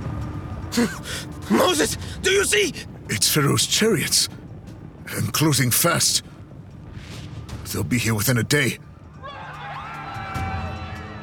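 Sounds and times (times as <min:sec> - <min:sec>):
speech: 0:00.8 - 0:04.5, 0:05.1 - 0:06.3, 0:07.7 - 0:08.9
panicked crowd shouting and screaming in alarm in camp: 0:09.2 - 0:11.2.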